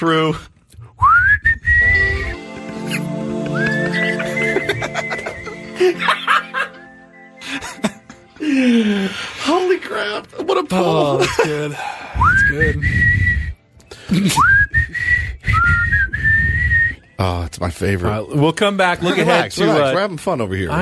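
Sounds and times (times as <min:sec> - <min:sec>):
speech: 0:00.0 - 0:00.5, 0:05.8 - 0:06.2, 0:08.5 - 0:13.2, 0:14.1 - 0:14.6, 0:17.2 - 0:20.8
person whistling a short sliding tune: 0:00.8 - 0:07.8, 0:12.1 - 0:17.3
chuckle-like sounds: 0:02.9 - 0:09.2, 0:11.0 - 0:12.2, 0:13.9 - 0:14.6.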